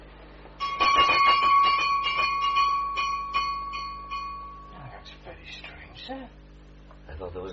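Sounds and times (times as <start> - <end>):
small servant's room bell jangling: 0.6 - 4.9.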